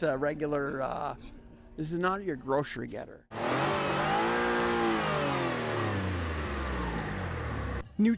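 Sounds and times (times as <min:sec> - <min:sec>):
speech: 0:00.0 - 0:03.4, 0:08.0 - 0:08.1
powerful 1,000-horsepower electric car accelerating hard: 0:03.3 - 0:07.8.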